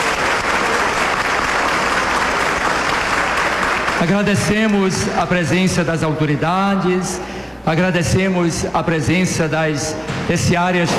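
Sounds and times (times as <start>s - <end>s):
sizable crowd applauding: 0.0s - 4.8s
speech: 4.0s - 10.9s.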